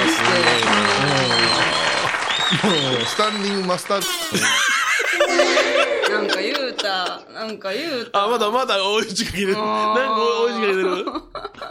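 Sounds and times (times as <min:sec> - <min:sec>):
hands clapping in applause: 0:00.0 - 0:04.6
laughter: 0:02.5 - 0:03.1, 0:04.0 - 0:07.6, 0:10.6 - 0:11.6
speech: 0:02.6 - 0:04.7, 0:05.4 - 0:11.5.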